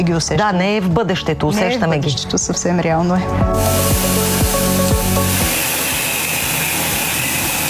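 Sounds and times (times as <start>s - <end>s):
speech: 0.0s - 4.4s
fertilizer mixer humming and pulsing while injecting into drip irrigation: 3.5s - 7.6s.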